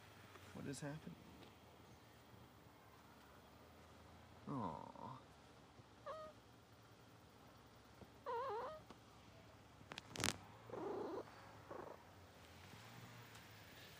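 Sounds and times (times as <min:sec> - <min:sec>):
speech: 0:00.7 - 0:01.3, 0:04.5 - 0:05.0
cat chirping meows: 0:06.0 - 0:06.4, 0:08.2 - 0:08.8, 0:10.7 - 0:12.0
cat purring while being petted: 0:06.0 - 0:06.4, 0:08.1 - 0:08.9, 0:09.9 - 0:12.2.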